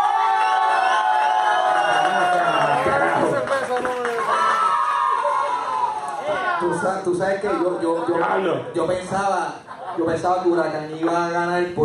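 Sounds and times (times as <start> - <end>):
loud crowd cheering and shouting in excited whoops and yells: 0.0 - 7.1
scattered clapping: 1.8 - 4.6
speech: 6.8 - 11.8.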